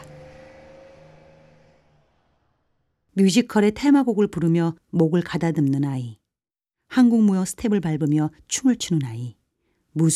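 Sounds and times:
rattling intercity bus engine droning with a faint tonal whine: 0.0s - 3.0s
speech: 3.2s - 6.2s, 6.9s - 9.4s, 10.0s - 10.1s.

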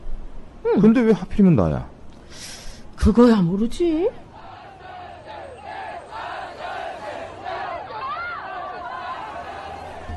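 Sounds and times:
speech: 0.6s - 4.2s
large agitated protest crowd shouting and yelling: 4.2s - 10.1s.

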